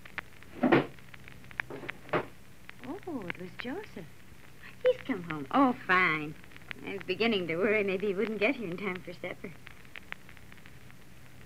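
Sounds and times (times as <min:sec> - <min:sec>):
wooden door slamming shut: 0:00.6 - 0:00.9, 0:01.7 - 0:02.3
speech: 0:03.1 - 0:04.2, 0:04.8 - 0:09.6.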